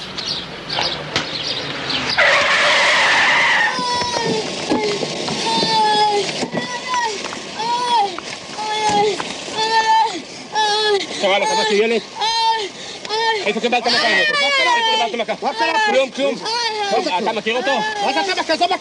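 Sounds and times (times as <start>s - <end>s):
passing car braking hard with a hissing screech: 1.9s - 6.1s
excited voices shouting and talking: 2.2s - 18.7s
speech: 11.4s - 12.2s, 13.5s - 18.7s.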